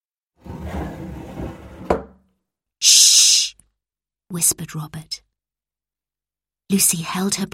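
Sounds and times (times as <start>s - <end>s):
wooden drawer sliding open with a creaky scrape: 0.4s - 1.9s
speech: 4.3s - 5.3s, 6.7s - 7.5s.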